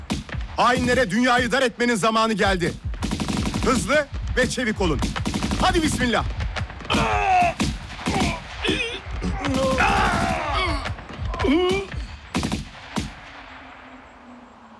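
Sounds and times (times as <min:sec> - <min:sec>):
gunfire in bursts and single shots: 0:00.0 - 0:01.6, 0:02.4 - 0:14.3
speech: 0:00.6 - 0:02.8, 0:03.6 - 0:07.3, 0:11.5 - 0:11.8
people groaning in pain: 0:06.8 - 0:12.2
people shouting: 0:06.8 - 0:12.2.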